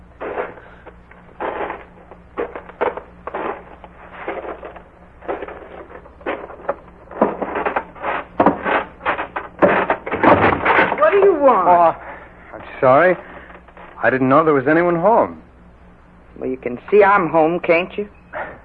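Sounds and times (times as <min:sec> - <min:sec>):
faint low hum: 0:00.0 - 0:18.6
footsteps on creaking wooden porch stairs of a farmhouse: 0:00.2 - 0:11.4
speech: 0:12.8 - 0:13.3, 0:14.0 - 0:15.5, 0:16.4 - 0:18.2.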